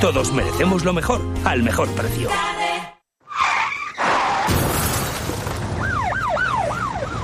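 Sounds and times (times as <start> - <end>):
speech: 0.0 - 2.6
tires screeching in a traffic accident: 3.2 - 5.8
crash of impact in a traffic accident: 4.0 - 5.8
glass shattering in a traffic accident: 4.3 - 5.7
emergency siren wailing: 5.7 - 7.2.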